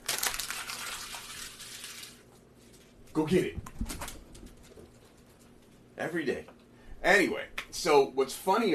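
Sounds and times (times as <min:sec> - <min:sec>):
sheet of paper being crumpled: 0:00.0 - 0:03.0
speech: 0:03.2 - 0:04.0, 0:06.0 - 0:08.7.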